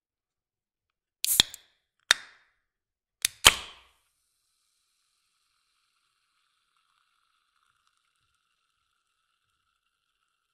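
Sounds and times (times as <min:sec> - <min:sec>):
soda can opening: 0:01.2 - 0:02.3, 0:03.2 - 0:03.9.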